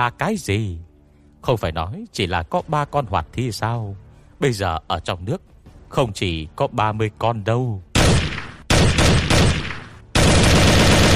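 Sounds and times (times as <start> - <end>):
speech: 0.0 - 7.9
rapid continuous gunfire during an attack on boats on the water: 8.0 - 11.1.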